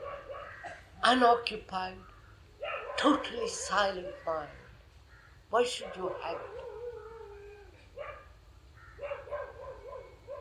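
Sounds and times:
dog barking: 0.0 - 0.8, 2.6 - 4.3, 5.8 - 6.8, 8.0 - 8.4, 9.0 - 10.3
low hum: 0.0 - 10.3
speech: 1.0 - 2.1, 3.0 - 4.6, 5.5 - 6.6.

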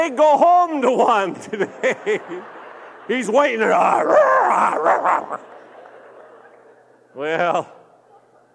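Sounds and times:
speech: 0.0 - 5.6, 7.2 - 7.8
laughter: 0.7 - 8.0
dog growling: 3.8 - 5.4.

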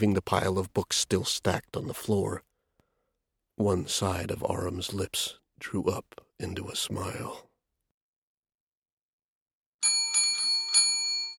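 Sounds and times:
speech: 0.0 - 2.5, 3.6 - 7.5
small door bell jingling as a door is pushed open: 9.8 - 11.3.

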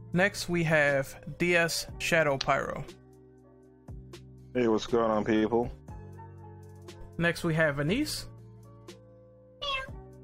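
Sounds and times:
speech: 0.1 - 3.0, 4.5 - 5.8, 7.2 - 8.3
cat meowing: 9.6 - 10.0.

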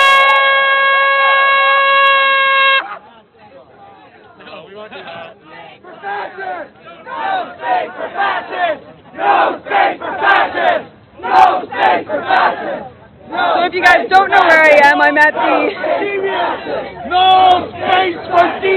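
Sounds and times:
protest crowd shouting and yelling: 0.0 - 4.6, 5.2 - 18.7
protest crowd chanting slogans in unison: 5.7 - 18.7.

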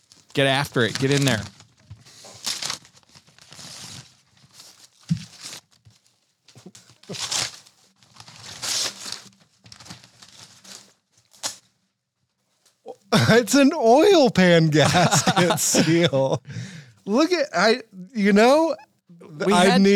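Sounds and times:
gift wrapping paper being torn open: 0.0 - 5.8, 6.6 - 11.7
speech: 0.4 - 1.6, 13.3 - 18.8, 19.4 - 19.9
laughter: 12.9 - 19.9.

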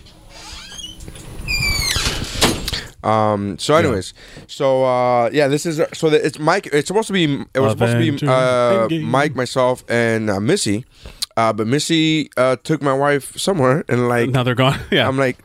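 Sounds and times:
door hinges squealing: 0.3 - 2.8
speech: 3.0 - 15.4.

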